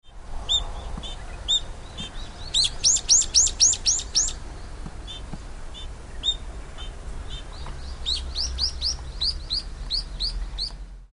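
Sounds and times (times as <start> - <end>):
hiyodori calling: 0.5 - 10.8.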